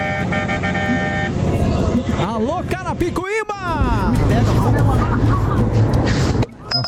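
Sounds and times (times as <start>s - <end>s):
car horn honking: 0.0s - 1.4s
speech: 2.5s - 6.2s
laughter: 3.9s - 6.4s.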